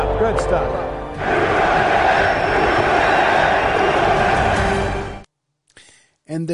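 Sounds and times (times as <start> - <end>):
stadium crowd cheering at a World Series baseball game first pitch: 0.7 - 5.2.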